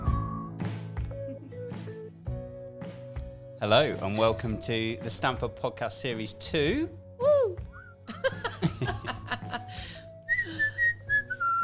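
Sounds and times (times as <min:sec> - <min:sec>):
person whistling clear high sustained notes: 0:00.0 - 0:01.7, 0:07.2 - 0:08.1, 0:10.3 - 0:11.6
speech: 0:03.6 - 0:07.0
chuckling laughter: 0:08.1 - 0:09.8.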